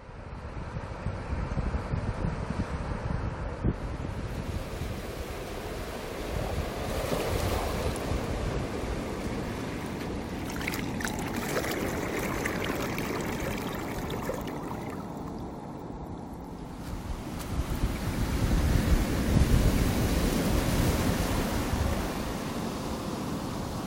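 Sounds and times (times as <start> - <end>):
gusty wind buffeting the microphone: 0.3 - 23.8
ocean waves: 4.3 - 23.8
surf roaring: 5.1 - 23.8.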